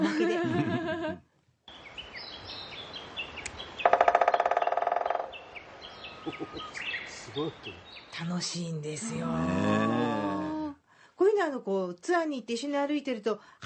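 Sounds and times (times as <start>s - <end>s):
laughter: 0.0s - 1.2s, 6.2s - 6.8s
birdsong chirps outdoors: 1.6s - 8.8s
woodpecker drumming: 3.5s - 6.8s
speech: 7.4s - 10.5s, 11.4s - 13.6s.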